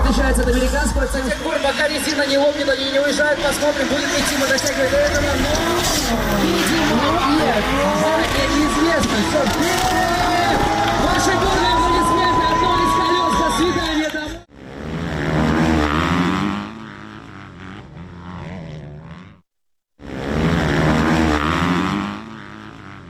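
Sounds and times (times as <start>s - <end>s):
drift car engines roaring: 0.0s - 19.3s, 20.0s - 23.0s
drift car tires squealing and skidding: 0.1s - 14.4s
voices babbling at a bikers' holiday celebration: 4.0s - 14.3s.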